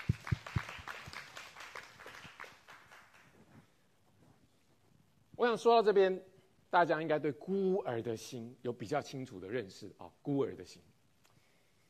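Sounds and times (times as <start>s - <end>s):
group of people clapping their hands: 0.0s - 3.8s
speech: 5.4s - 10.9s.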